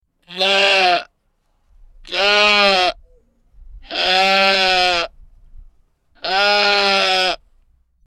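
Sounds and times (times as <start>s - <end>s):
animal bleating: 0.2s - 1.1s, 2.0s - 3.0s, 3.8s - 5.2s, 6.2s - 7.4s.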